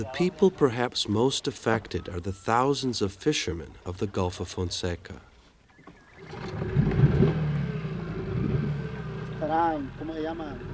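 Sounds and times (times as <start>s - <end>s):
speech: 0.0s - 5.3s, 9.5s - 10.7s
small wooden fishermen's motorboat chugging down an estuary waterway in the Gulf of Fonseca: 5.8s - 10.7s.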